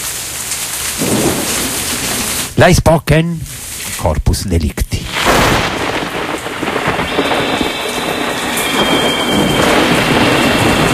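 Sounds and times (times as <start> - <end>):
steady dense rain: 0.0 - 10.9
low rumble of thunder: 1.0 - 2.6, 5.0 - 10.9
speech: 2.6 - 5.1.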